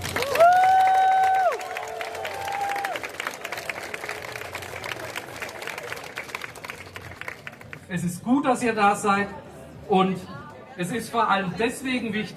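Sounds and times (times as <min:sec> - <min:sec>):
large crowd clapping: 0:00.0 - 0:07.9
speech: 0:07.9 - 0:12.3.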